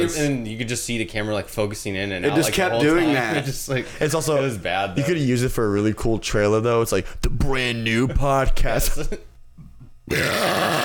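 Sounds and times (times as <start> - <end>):
speech: 0.0 - 9.3, 10.1 - 10.8
loud drawn-out croaky burp into a microphone: 10.1 - 10.8.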